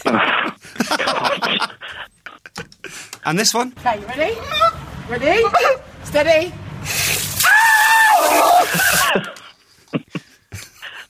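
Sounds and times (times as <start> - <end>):
laughter: 0.0 - 2.7, 8.5 - 11.0
noise: 0.0 - 11.0
speech: 0.1 - 1.7, 3.2 - 7.0
person screaming in a video clip: 7.4 - 9.1.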